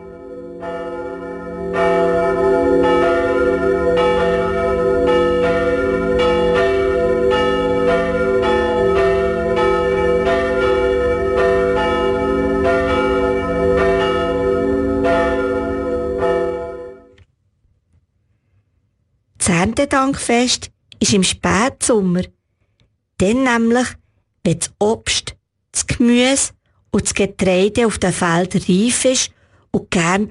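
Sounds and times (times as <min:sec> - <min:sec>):
church bells pealing: 0:00.0 - 0:17.2
speech: 0:19.9 - 0:22.4, 0:23.2 - 0:25.2, 0:26.0 - 0:30.2.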